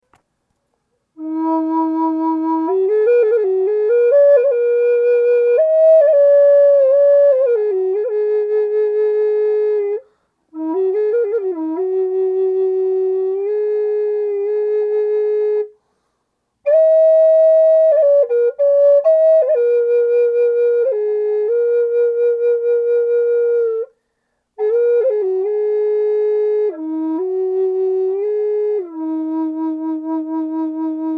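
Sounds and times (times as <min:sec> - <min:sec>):
flutes: 0:01.1 - 0:15.8, 0:16.6 - 0:24.0, 0:24.6 - 0:31.1.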